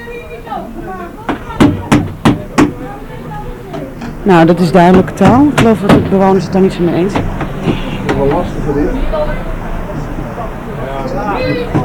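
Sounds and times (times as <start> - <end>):
knocking on a door: 1.3 - 2.8, 4.8 - 6.3, 7.1 - 8.2
speech: 4.2 - 9.6.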